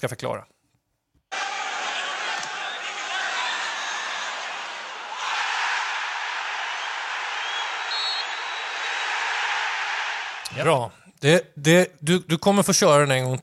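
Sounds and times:
speech: 0.0s - 0.6s, 10.5s - 13.4s
large stadium crowd roaring at a football match: 1.3s - 10.6s.

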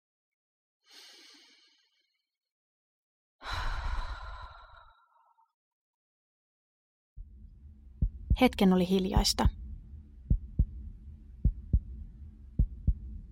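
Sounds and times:
slow controlled breathing: 3.4s - 5.4s
low rumble: 7.2s - 13.3s
speech: 8.4s - 9.6s.

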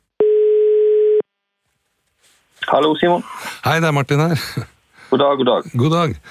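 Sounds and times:
telephone ringback tone of an outgoing call: 0.2s - 1.2s
speech: 2.6s - 6.3s.

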